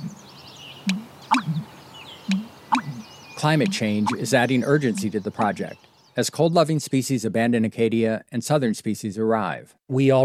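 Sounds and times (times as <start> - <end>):
American bittern deep gulping call with hollow pumping notes in a marsh: 0.0 - 6.2
speech: 3.4 - 10.2.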